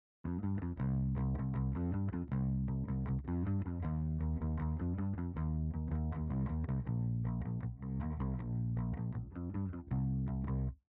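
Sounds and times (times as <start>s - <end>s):
reversed bass: 0.3s - 10.8s.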